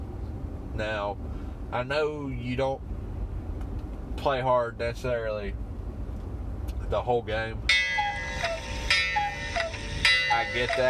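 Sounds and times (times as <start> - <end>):
faint hum: 0.0 - 10.8
speech: 0.8 - 3.0, 4.2 - 5.6, 6.9 - 7.8, 10.3 - 10.8
alarm clock electronic chirps: 7.7 - 10.8.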